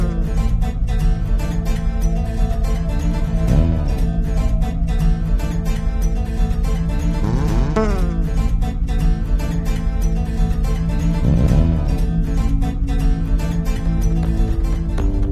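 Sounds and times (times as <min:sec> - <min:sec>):
ambient howl: 0:00.1 - 0:15.2.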